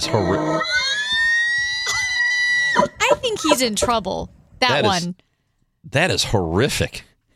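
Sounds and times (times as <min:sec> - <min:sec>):
speech: 0:00.0 - 0:00.8, 0:02.8 - 0:05.2, 0:05.8 - 0:07.1
elk mating-call bugle: 0:01.6 - 0:04.1.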